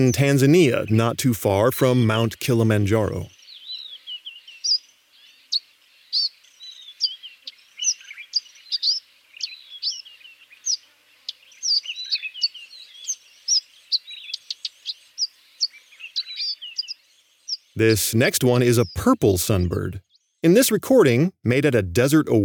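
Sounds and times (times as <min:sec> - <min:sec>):
speech: 0:00.0 - 0:03.4, 0:17.8 - 0:22.4
eastern violet-backed sunbird twittering in Tanzania near Mount Kilimanjaro: 0:03.3 - 0:17.8.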